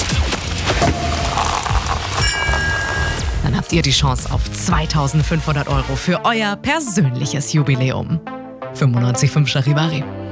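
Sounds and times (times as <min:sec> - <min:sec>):
sparkling wine cork popping: 0:00.7 - 0:03.4
speech: 0:03.7 - 0:10.3.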